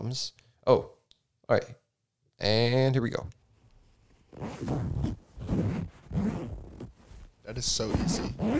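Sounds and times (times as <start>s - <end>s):
speech: 0.1s - 1.8s, 2.4s - 3.4s, 4.4s - 6.6s, 7.5s - 8.5s
zipper pulls on a computer bag: 4.3s - 8.5s.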